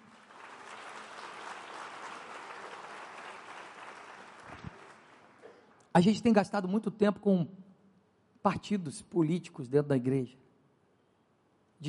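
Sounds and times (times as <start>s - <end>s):
large audience applauding: 0.0s - 5.4s
speech: 6.0s - 7.6s, 8.4s - 10.4s.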